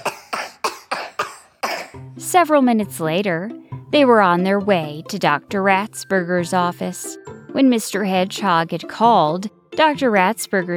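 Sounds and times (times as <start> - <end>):
harsh coughs: 0.0 - 2.0
speech: 2.3 - 10.7.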